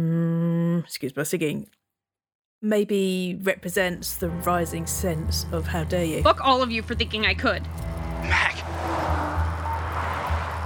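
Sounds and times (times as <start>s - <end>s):
speech: 0.8s - 1.8s, 2.6s - 8.5s
car engine and tyre noise speeding past on a fast road: 7.6s - 10.6s.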